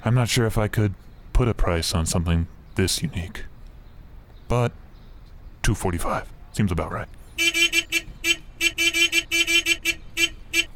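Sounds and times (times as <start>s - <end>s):
speech: 0.0s - 3.5s, 4.5s - 4.8s, 5.6s - 7.6s
car horn honking: 7.4s - 10.7s.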